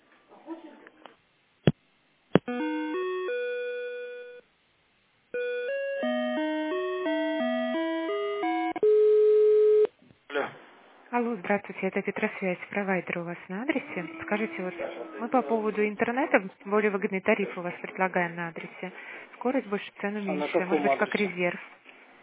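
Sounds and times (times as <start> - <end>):
electronic telephone line tones during a call transfer: 2.5 - 4.4, 5.4 - 9.9
speech: 11.2 - 21.8.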